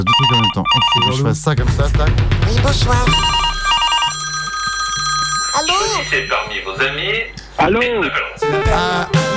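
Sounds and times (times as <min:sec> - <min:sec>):
telephone ringing with an incoming call: 0:00.0 - 0:01.4, 0:03.1 - 0:07.4
speech: 0:00.0 - 0:03.5, 0:05.6 - 0:09.2.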